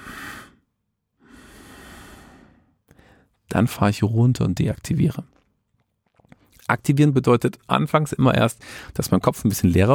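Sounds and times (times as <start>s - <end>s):
slow breathing paced to walking: 0.0s - 3.4s, 8.6s - 9.0s
speech: 3.5s - 5.4s, 6.7s - 9.9s.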